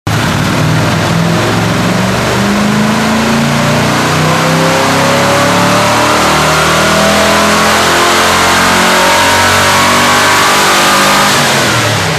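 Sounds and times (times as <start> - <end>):
1977 Ford Mustang II Cobra engine on a dyno with turndowns: 0.1 - 12.1.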